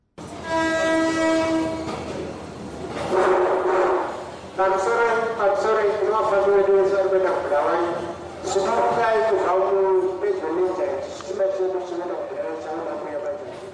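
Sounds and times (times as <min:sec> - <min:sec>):
train horn: 0:00.2 - 0:02.1, 0:03.1 - 0:04.1
train rumbling and hissing moving through the station: 0:00.2 - 0:13.7.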